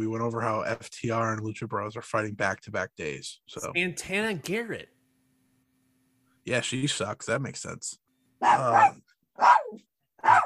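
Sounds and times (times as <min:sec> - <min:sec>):
speech: 0:00.0 - 0:05.0, 0:06.4 - 0:10.4
dog barking: 0:08.4 - 0:10.4.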